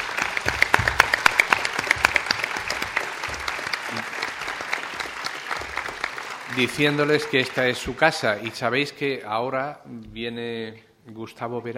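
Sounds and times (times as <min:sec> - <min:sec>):
audience applauding the speakers: 0:00.0 - 0:08.5
speech: 0:06.6 - 0:11.7.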